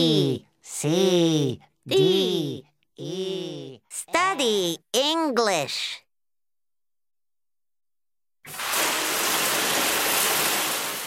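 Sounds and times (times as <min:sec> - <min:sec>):
speech: 0:00.0 - 0:06.0, 0:08.5 - 0:08.9
shower water spraying and splashing: 0:08.5 - 0:11.0.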